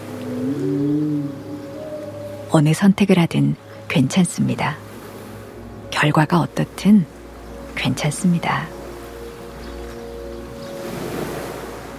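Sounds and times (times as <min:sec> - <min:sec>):
low drawn-out whale call: 0:00.0 - 0:02.6
speech: 0:02.5 - 0:04.8, 0:06.0 - 0:07.1, 0:07.8 - 0:08.8.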